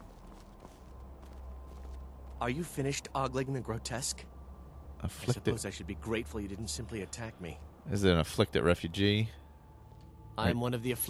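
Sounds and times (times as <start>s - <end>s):
soft footsteps walking down a road in a video game: 0.0s - 2.6s
low steady rumbling ambience in a video game: 0.0s - 11.0s
speech: 2.4s - 4.4s, 5.0s - 9.4s, 10.4s - 11.0s.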